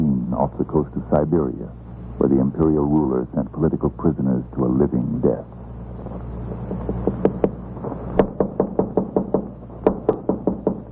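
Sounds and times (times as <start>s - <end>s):
steady low hum: 0.0s - 10.9s
speech: 0.4s - 5.6s
knocking on a door: 8.2s - 10.9s.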